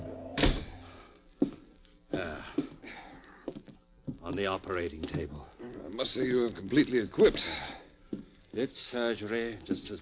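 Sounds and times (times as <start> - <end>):
door kicked shut with a heavy thud: 0.3 - 0.8
speech: 4.3 - 7.8, 8.6 - 10.0.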